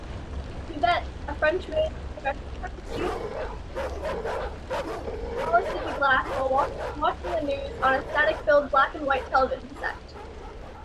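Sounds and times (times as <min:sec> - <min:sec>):
heavy rain: 0:00.0 - 0:10.8
speech: 0:01.4 - 0:10.2
Rottweilers barking in heavy rain: 0:02.8 - 0:10.8.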